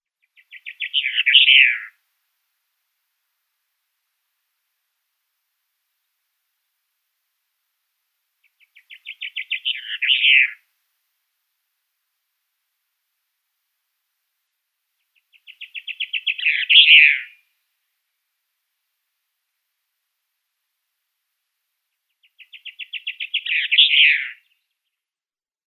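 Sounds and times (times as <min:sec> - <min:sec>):
blue chaffinch song: 0:00.2 - 0:02.0, 0:08.4 - 0:10.7, 0:15.0 - 0:17.5, 0:21.9 - 0:25.0.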